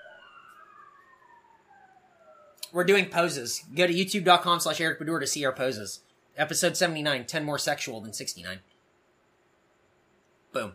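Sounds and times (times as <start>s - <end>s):
siren wailing outside: 0.0s - 5.7s
speech: 2.7s - 8.7s, 10.5s - 10.7s.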